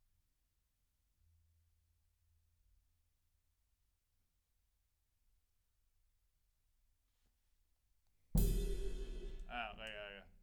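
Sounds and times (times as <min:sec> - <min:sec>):
snare drum top: 0:08.4 - 0:10.2.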